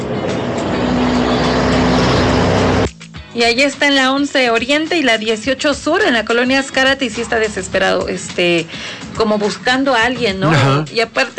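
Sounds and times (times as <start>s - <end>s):
cars passing fast on a street: 0.0s - 2.9s
speech: 3.4s - 11.3s.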